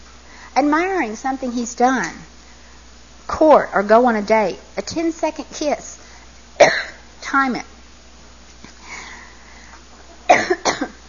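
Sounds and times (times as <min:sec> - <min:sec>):
speech: 0:00.6 - 0:02.3, 0:03.3 - 0:06.0, 0:07.3 - 0:07.7
person coughing mid-speech: 0:06.6 - 0:07.0, 0:10.3 - 0:11.0.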